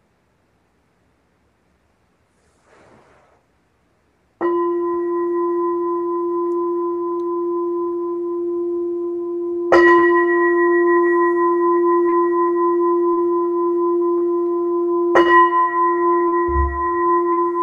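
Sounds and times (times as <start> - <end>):
meditation bell being struck: 4.4 - 17.6.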